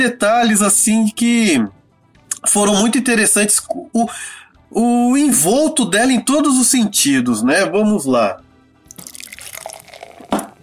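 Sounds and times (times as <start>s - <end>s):
speech: 0.0s - 1.8s, 2.4s - 8.4s
water poured into a vessel to drink: 8.9s - 10.6s.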